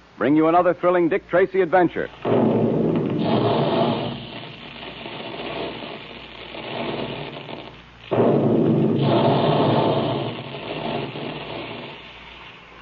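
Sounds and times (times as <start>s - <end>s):
speech: 0.2s - 2.4s
cereal puffing guns roaring in a plant making puffed wheat and puffed rice: 2.2s - 12.1s
forceful blast-like burst of cereal puffing gun: 2.2s - 12.4s.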